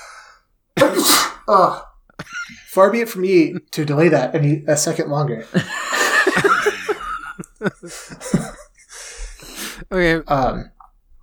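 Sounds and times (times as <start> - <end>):
sneeze: 0.8 - 1.9
speech: 1.0 - 6.5, 7.6 - 8.5, 9.9 - 10.7
laughter: 2.2 - 2.8, 5.4 - 10.3.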